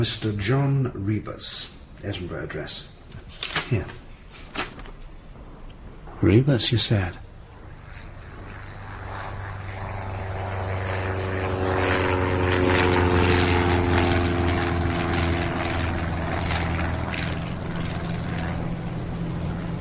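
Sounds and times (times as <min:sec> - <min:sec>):
speech: 0:00.0 - 0:04.0, 0:06.2 - 0:07.2
small propeller airplane engine in flight: 0:07.4 - 0:19.7.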